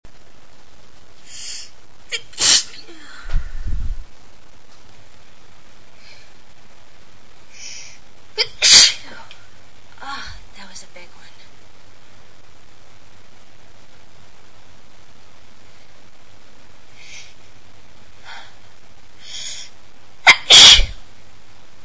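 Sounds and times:
woman sneezing loudly like a hurricane: 2.1 - 3.0, 8.4 - 9.1, 20.3 - 21.0.

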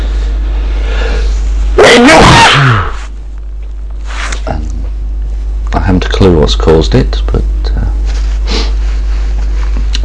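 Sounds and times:
low hum: 0.0 - 10.0
loud sneeze with a voiced wavering tail: 1.8 - 3.1
speech: 6.2 - 7.9.

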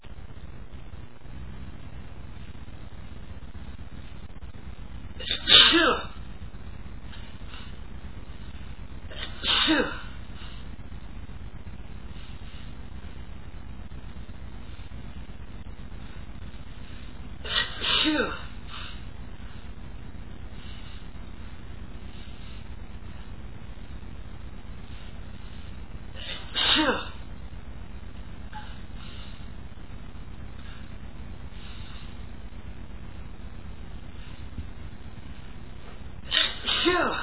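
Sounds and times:
man sneezing from pepper: 5.2 - 6.2, 9.1 - 10.1, 26.2 - 27.2, 36.3 - 37.2.

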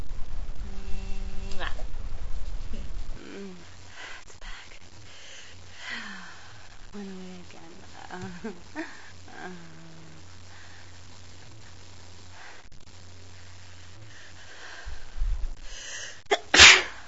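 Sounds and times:
faint rustling: 0.0 - 15.8
low steady hum: 0.0 - 17.0
speech: 8.4 - 9.8
small animal sneezing: 16.3 - 17.0.

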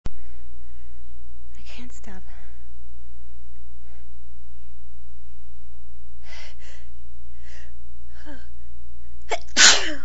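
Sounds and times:
low steady hum: 0.1 - 10.0
speech: 1.8 - 2.5
person sneezing: 9.3 - 10.0.

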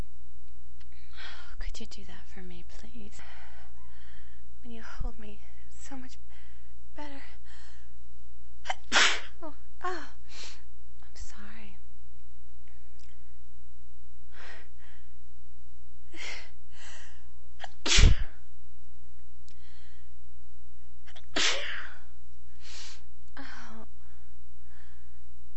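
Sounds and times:
steady low hum: 0.0 - 25.5
quiet breathing: 0.8 - 8.2, 9.8 - 11.9, 14.2 - 15.4, 16.0 - 17.6, 19.5 - 20.9, 21.8 - 25.5
speech: 1.8 - 3.7, 4.6 - 6.4, 7.0 - 7.7, 8.6 - 10.1
person sneezing: 8.7 - 9.4, 17.6 - 18.4, 21.1 - 22.0.

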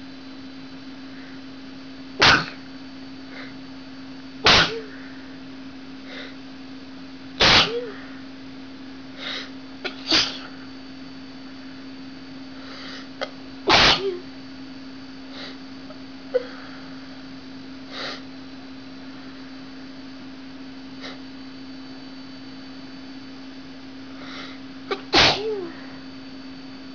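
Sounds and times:
woman sneezing from dusting: 2.2 - 2.6, 4.4 - 5.0, 7.4 - 8.1, 9.2 - 10.6, 13.2 - 14.3, 24.9 - 25.9.

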